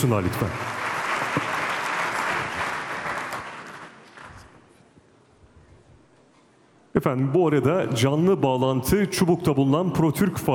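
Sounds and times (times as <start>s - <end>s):
speech: 0.0s - 0.7s, 7.0s - 10.5s
audience applauding at an official ceremony: 0.0s - 4.5s.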